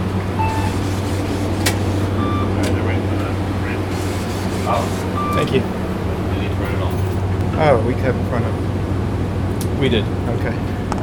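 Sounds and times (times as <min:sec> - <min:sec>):
bus engine idling: 0:00.0 - 0:11.0
voices: 0:00.0 - 0:11.0
faint beeps: 0:00.3 - 0:00.9, 0:02.1 - 0:03.9, 0:04.7 - 0:05.7
speech: 0:05.4 - 0:05.8, 0:07.6 - 0:08.6, 0:09.8 - 0:10.8.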